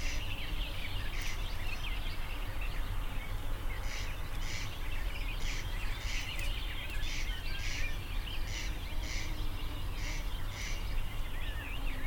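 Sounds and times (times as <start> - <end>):
booted warbler singing a fast rambling scratchy warble: 0.0 - 12.0.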